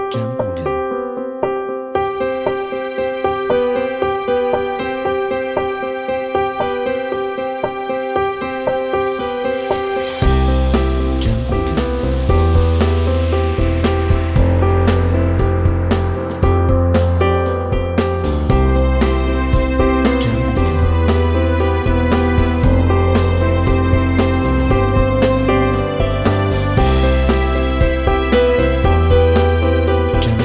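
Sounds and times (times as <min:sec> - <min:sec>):
motivational uplifting music: 0:00.1 - 0:30.4.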